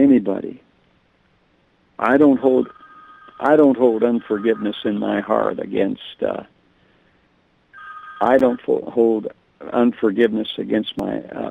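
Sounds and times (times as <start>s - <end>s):
speech: 0.2s - 0.7s, 2.0s - 2.8s, 3.4s - 6.5s, 8.2s - 11.4s
cell phone ringtone: 2.3s - 5.2s, 7.8s - 8.6s.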